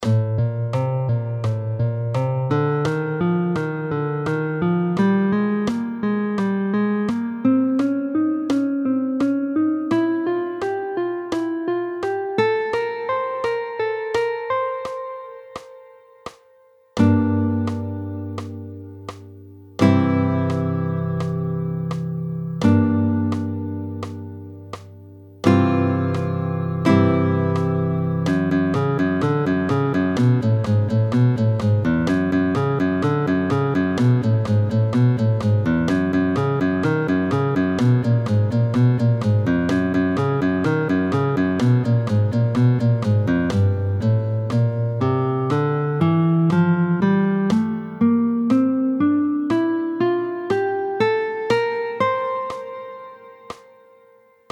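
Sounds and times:
guitar playing: 0.0 - 16.4, 17.0 - 54.4.

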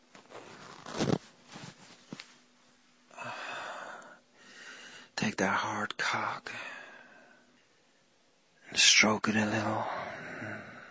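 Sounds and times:
clothing rustling as a top is taken off: 0.0 - 2.5
pants zipper being pulled down: 0.2 - 1.8
speech: 5.4 - 6.7, 8.8 - 10.1.

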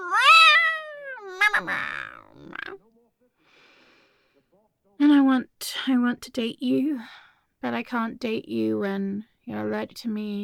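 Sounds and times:
breathy trilling sounds from a person imitating a cat: 0.0 - 2.8
person imitating a cat meowing: 0.0 - 2.8
speech: 1.5 - 2.9, 5.2 - 10.4.

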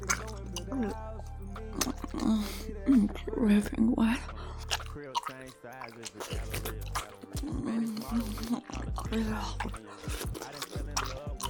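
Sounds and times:
person murmuring softly: 0.0 - 11.4
wet mouth noises with spit drooling: 0.0 - 11.4
speech: 0.8 - 1.1, 5.5 - 6.5, 8.1 - 9.8
person breathing: 2.0 - 5.0, 6.2 - 11.1.

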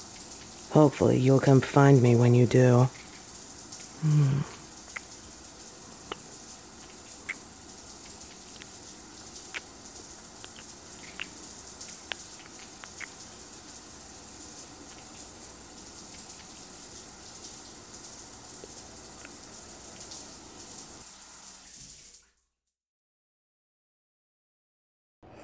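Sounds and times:
faint drips and taps: 0.0 - 0.7, 2.5 - 4.0, 4.6 - 20.9
shower water running: 0.0 - 22.5
speech: 0.8 - 3.0, 4.0 - 4.6.

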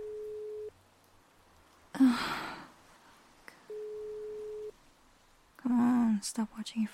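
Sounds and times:
phone ringback tone: 0.0 - 0.7, 3.7 - 4.7
speech: 5.7 - 6.9.

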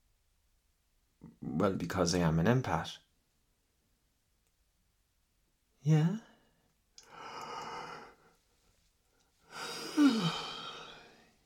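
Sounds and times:
speech: 1.4 - 3.0, 5.8 - 6.3
person yawning: 9.5 - 11.1.

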